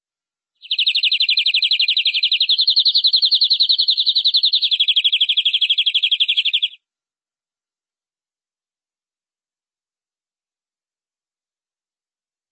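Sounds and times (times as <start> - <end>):
canary song trill: 0.6 - 6.8.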